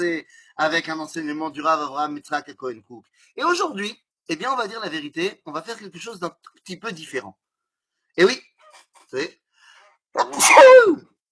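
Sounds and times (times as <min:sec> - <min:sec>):
speech: 0:00.0 - 0:07.4, 0:08.2 - 0:08.5, 0:09.1 - 0:09.4, 0:10.1 - 0:11.1
loud human sneeze: 0:10.2 - 0:11.0.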